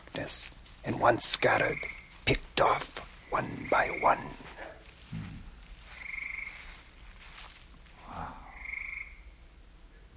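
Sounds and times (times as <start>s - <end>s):
frogs croaking in a marsh: 0.0s - 6.9s, 8.0s - 9.6s
soft constant hum: 0.0s - 10.1s
speech: 0.2s - 4.6s
drawn-out buzzing frog croak: 6.0s - 6.6s, 8.1s - 9.4s.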